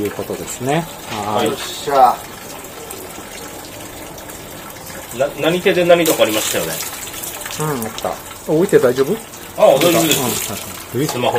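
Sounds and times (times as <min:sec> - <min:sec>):
speech: 0:00.0 - 0:02.3, 0:05.2 - 0:07.0, 0:07.6 - 0:11.3
water running from a tap while washing hands: 0:00.0 - 0:11.3.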